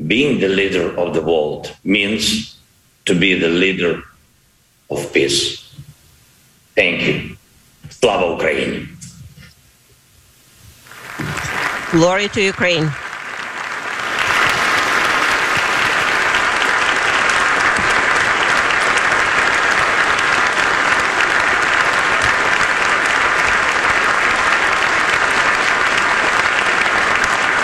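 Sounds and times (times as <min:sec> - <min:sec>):
speech: 0:00.1 - 0:04.1, 0:04.9 - 0:05.6, 0:06.8 - 0:08.9, 0:11.9 - 0:13.0
large crowd applauding after a speech: 0:10.8 - 0:27.6.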